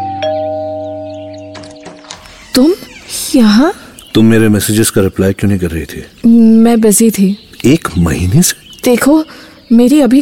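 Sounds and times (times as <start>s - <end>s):
two-tone ding-dong doorbell chime: 0.0s - 2.2s
speech: 2.6s - 10.2s.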